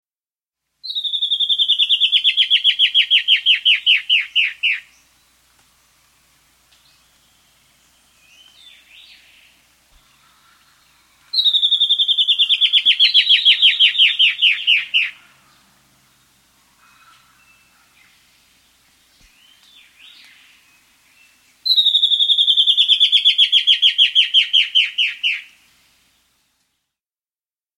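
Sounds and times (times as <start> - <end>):
White-bellied antbird calling in South America: 0.8 - 5.1, 8.1 - 15.7, 16.7 - 18.2, 21.7 - 25.6.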